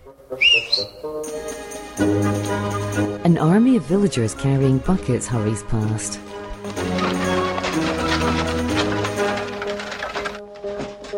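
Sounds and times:
music: 0.0 - 11.1
speech: 0.1 - 6.9
person whistling two quick sliding notes: 0.4 - 0.9.

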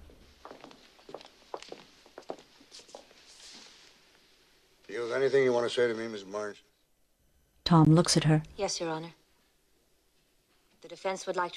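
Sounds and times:
footsteps of two people walking up to a judge's bench in a courtroom: 0.0 - 4.5
steady hiss: 0.0 - 11.5
speech: 5.0 - 6.7, 7.7 - 9.2, 11.0 - 11.5.

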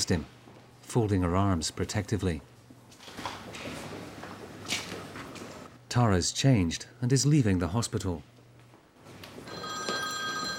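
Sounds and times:
speech: 0.0 - 2.5, 6.0 - 8.3
mobile phone ringing with electronic tone: 9.4 - 10.5.

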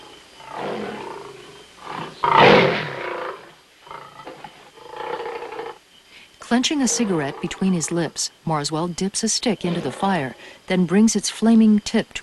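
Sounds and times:
lion roaring at the edge of a forest: 0.0 - 5.8, 9.6 - 10.4
speech: 6.5 - 12.2.

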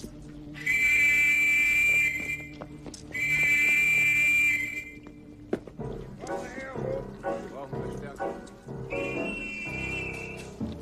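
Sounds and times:
shrill whistle blasts from a soldier: 0.6 - 5.0, 8.9 - 10.6.

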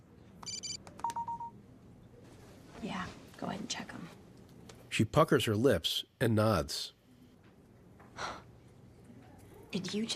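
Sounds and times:
phone keypad tones from typing: 0.4 - 1.6
speech: 2.8 - 4.2, 5.0 - 7.0, 9.7 - 10.1.

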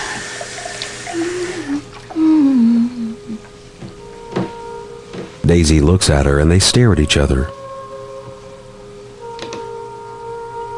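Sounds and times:
water pouring into a glass: 0.0 - 2.2
speech: 5.5 - 7.6.

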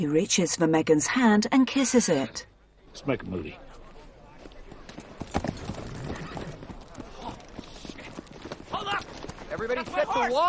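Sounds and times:
speech: 0.0 - 3.6, 9.6 - 10.4
hooves of a ridden horse clip-clopping: 3.6 - 10.4.

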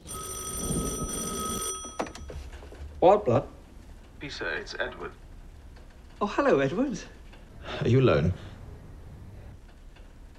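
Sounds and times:
telephone bell ringing: 0.0 - 2.4
speech: 3.0 - 3.6, 4.2 - 5.2, 6.2 - 8.5.

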